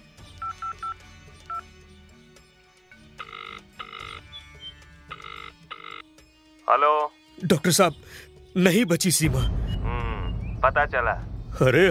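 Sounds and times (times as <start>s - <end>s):
short keypad beeps from a phone being dialed: 0.4s - 1.6s, 3.2s - 6.0s
speech: 6.7s - 9.6s, 10.6s - 11.8s.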